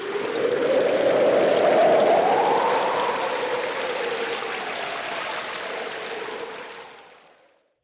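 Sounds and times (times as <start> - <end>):
water pouring from a watering can: 0.0 - 7.5.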